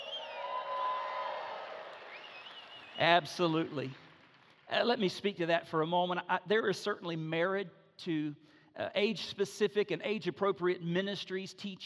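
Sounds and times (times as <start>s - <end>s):
high whistles from the crowd: 0.0s - 1.3s, 2.0s - 3.2s
audience cheering and whooping: 0.0s - 2.9s
audience clapping: 0.0s - 5.1s
speech: 3.0s - 4.0s, 4.7s - 11.8s.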